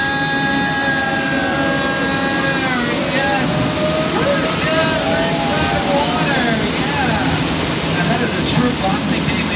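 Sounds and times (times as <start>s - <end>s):
faint murmuring voices: 0.0s - 8.4s
waterfall splashing beside a tour boat: 0.0s - 9.5s.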